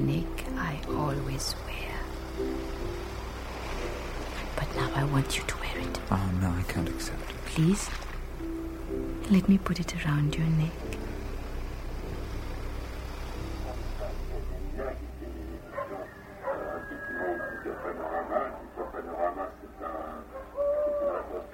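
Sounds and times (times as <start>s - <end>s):
low rumble: 0.0s - 16.8s
speech: 0.8s - 2.8s, 4.8s - 8.1s, 8.9s - 11.0s
owl hooting: 13.7s - 21.5s.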